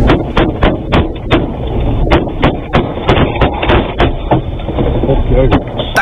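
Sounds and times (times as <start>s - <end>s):
gunfire heard from inside an armored car: 0.0s - 4.4s
steady armored car engine rumble: 0.0s - 6.0s.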